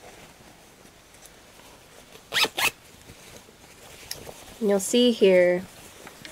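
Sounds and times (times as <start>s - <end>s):
zipper being zipped up: 2.3s - 2.8s
speech: 4.6s - 5.7s.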